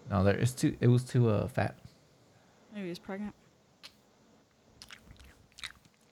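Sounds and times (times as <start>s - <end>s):
speech: 0.1s - 1.9s, 2.8s - 3.4s
chewing: 4.8s - 6.1s.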